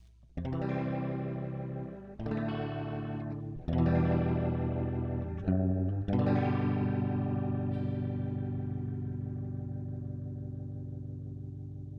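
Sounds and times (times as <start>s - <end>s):
guitar chords: 0.4s - 11.9s.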